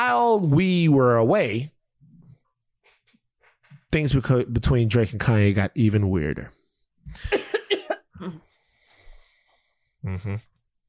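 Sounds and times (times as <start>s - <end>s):
speech: 0.3s - 1.8s, 3.9s - 7.4s, 10.0s - 10.5s
person coughing into their fist: 7.2s - 8.5s.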